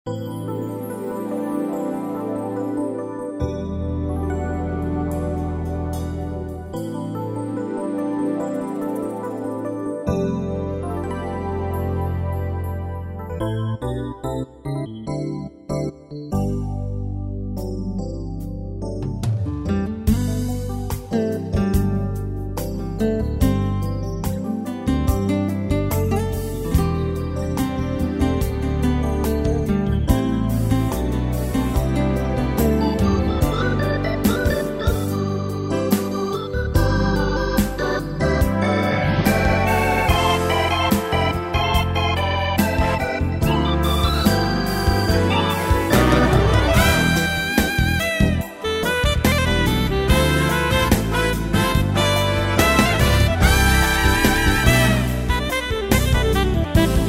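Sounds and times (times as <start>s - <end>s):
electric piano: 0.1s - 57.0s.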